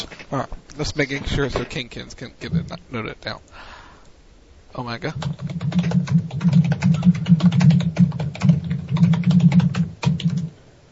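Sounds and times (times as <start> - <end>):
speech: 0.3 - 3.8, 4.7 - 7.6
typing on a computer keyboard: 5.2 - 10.5.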